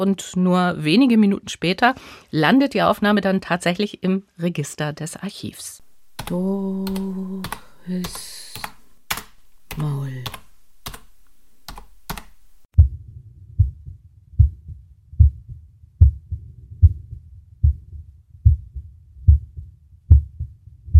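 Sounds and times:
speech: 0:00.0 - 0:08.7, 0:09.8 - 0:10.4
sharp clicks: 0:05.8 - 0:12.7
recorded human heartbeat: 0:05.8 - 0:20.9.

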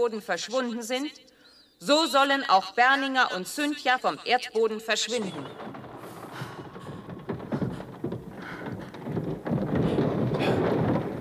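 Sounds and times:
speech: 0:00.0 - 0:05.8
ceiling collapsing with rumble of falling debris: 0:05.0 - 0:11.1
debris knocks and crashes: 0:05.1 - 0:11.1.

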